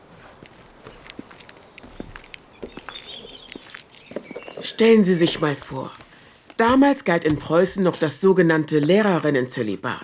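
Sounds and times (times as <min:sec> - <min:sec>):
faint bird chirping: 0:00.0 - 0:05.0
footsteps walking on a freshly paved street: 0:00.0 - 0:08.4
speech: 0:04.8 - 0:06.0, 0:06.6 - 0:10.0.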